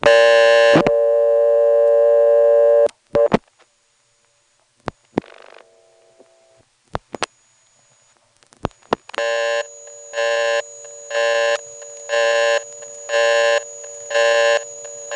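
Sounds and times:
steady electrical hum on a telephone line: 0:00.0 - 0:15.1
telephone busy signal of on-off buzzing tones: 0:00.1 - 0:02.9, 0:09.2 - 0:15.1.

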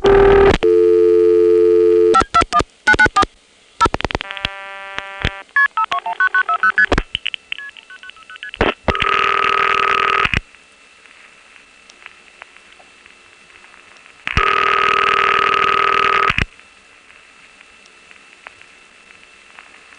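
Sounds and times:
multi-frequency outpulsing tones from telephone register senders to a crossbar exchange in Arlington, Virginia: 0:00.0 - 0:06.9, 0:07.6 - 0:10.4, 0:14.3 - 0:16.5.

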